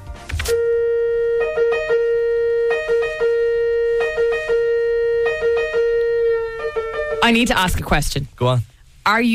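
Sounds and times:
Italian ambulance siren: 0:00.4 - 0:07.6
speech: 0:07.3 - 0:09.3.

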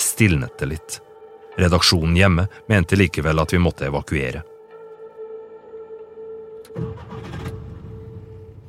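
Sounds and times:
speech: 0:00.2 - 0:04.5
car engine starting: 0:06.5 - 0:08.6.

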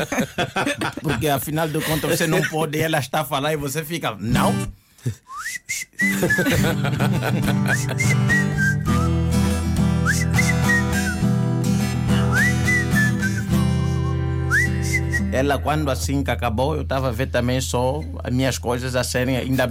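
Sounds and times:
laughter: 0:00.0 - 0:02.7, 0:06.1 - 0:08.4
speech: 0:00.0 - 0:08.7, 0:15.3 - 0:19.6
person whistling a jaunty tune: 0:05.1 - 0:06.7, 0:07.6 - 0:15.4
loud full instrumental music: 0:06.0 - 0:16.0.

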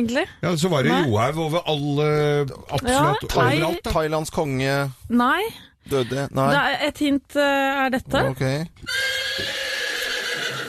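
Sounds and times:
speech: 0:00.0 - 0:09.5
horse neighing: 0:08.9 - 0:10.6.

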